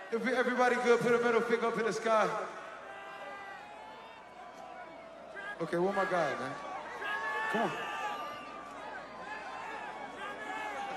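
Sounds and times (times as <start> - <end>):
speech: 0.1 - 2.6, 5.6 - 6.7, 7.5 - 7.9
dense concert crowd shouting and calling out: 2.4 - 10.9.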